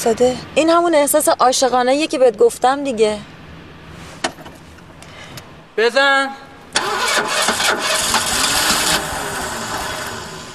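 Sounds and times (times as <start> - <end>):
speech: 0.0 - 3.3, 5.8 - 6.9
car engine cranking and trying to start: 6.7 - 10.5.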